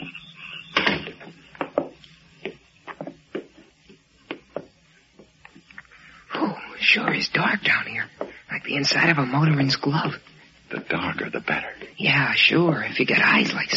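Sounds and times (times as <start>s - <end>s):
basement entrance door creaking and thudding shut: 0.7s - 1.2s
speech: 7.2s - 8.1s, 8.7s - 13.7s.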